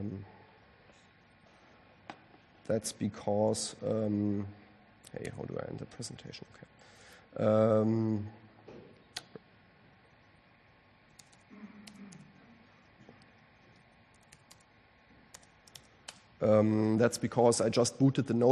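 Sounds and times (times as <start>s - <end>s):
speech: 2.7s - 8.4s, 16.4s - 18.5s
typing a command on a notebook laptop keyboard: 11.1s - 12.2s, 13.2s - 14.7s, 15.3s - 16.2s.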